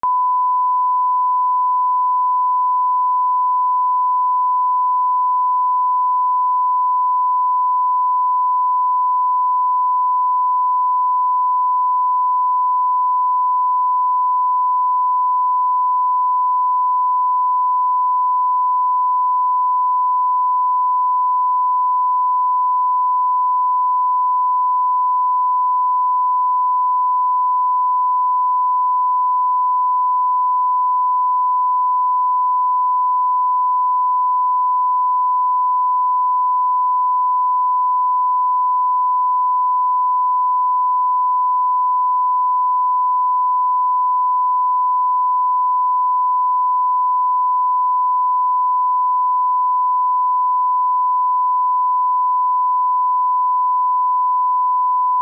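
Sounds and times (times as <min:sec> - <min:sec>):
1kHz sine tone on left channel: 0:00.0 - 0:55.1.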